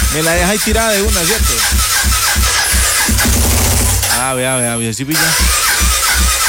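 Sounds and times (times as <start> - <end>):
speech: 0.1 - 1.9, 4.2 - 6.4
motorcycle engine cranking without starting: 1.3 - 4.4.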